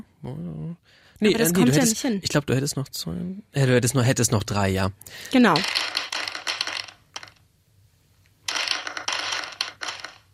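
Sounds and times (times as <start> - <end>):
speech: 0.2 - 5.9
dice being rolled: 5.5 - 7.4, 8.4 - 10.3.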